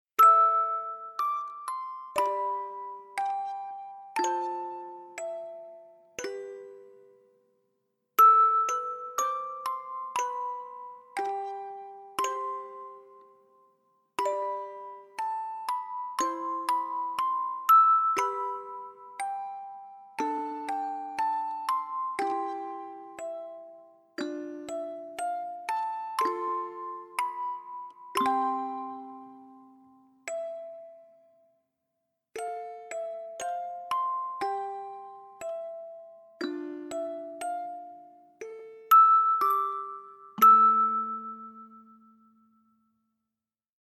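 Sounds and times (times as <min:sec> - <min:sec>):
music box melody: 0:00.2 - 0:31.6, 0:32.3 - 0:43.1.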